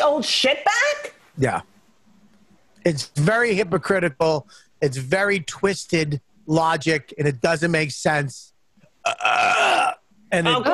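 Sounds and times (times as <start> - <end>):
speech: 0.0 - 1.7, 2.8 - 10.7
loud drawn-out burp: 9.0 - 10.0.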